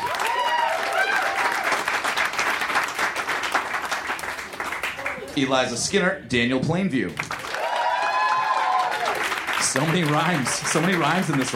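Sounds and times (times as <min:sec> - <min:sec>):
excited whoops: 0:00.0 - 0:01.8, 0:07.5 - 0:09.2
crowd applauding a contestant: 0:00.0 - 0:05.6, 0:07.2 - 0:11.5
speech: 0:05.4 - 0:07.3, 0:09.7 - 0:11.5.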